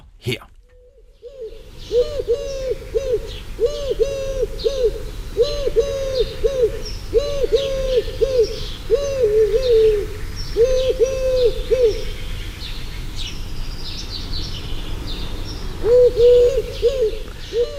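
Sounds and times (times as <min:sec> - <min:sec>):
speech: 0:00.2 - 0:00.5
Eurasian collared dove cooing in three-note phrases: 0:01.2 - 0:12.2, 0:15.8 - 0:17.7.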